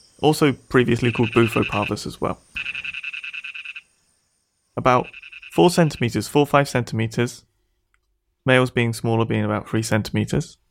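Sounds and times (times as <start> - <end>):
speech: 0.2 - 2.8, 4.8 - 7.5, 8.4 - 10.6
Malayan dwarf toad Ingerophrynus parvus trilling: 0.9 - 4.0, 4.8 - 6.2.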